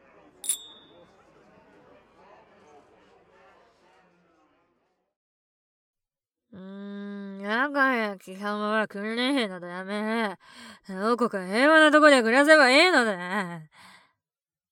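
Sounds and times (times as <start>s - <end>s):
murmur of crowd chatter: 0.0s - 5.0s
glasses clinking in a toast: 0.4s - 1.0s
speech: 7.6s - 13.9s.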